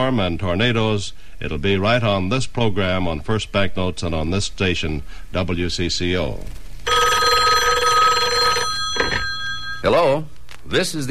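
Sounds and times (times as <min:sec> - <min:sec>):
speech: 0:00.1 - 0:06.6, 0:09.8 - 0:11.0
shrill telephone bell ringing: 0:06.9 - 0:10.3.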